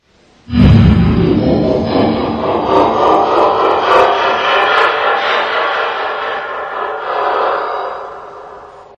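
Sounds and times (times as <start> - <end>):
creepy horror laughter: 1.4 - 8.5.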